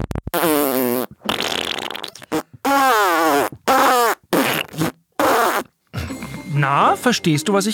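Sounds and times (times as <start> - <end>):
loud buzzy fart noises blown with the mouth: 0.0 - 5.8
speech: 6.6 - 7.7.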